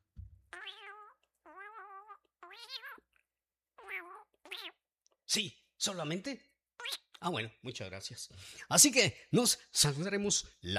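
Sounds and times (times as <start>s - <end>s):
cat meowing: 0.5s - 3.1s, 3.8s - 4.8s
speech: 5.3s - 6.5s, 7.2s - 10.7s.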